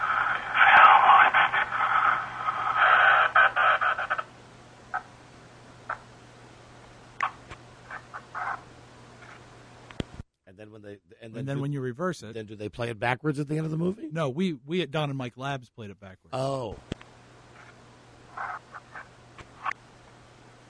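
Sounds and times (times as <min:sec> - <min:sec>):
loud band-limited radio static crackling: 0:00.0 - 0:05.2, 0:07.2 - 0:10.2, 0:16.8 - 0:19.8
low steady hum: 0:00.0 - 0:20.6
speech: 0:11.5 - 0:16.9.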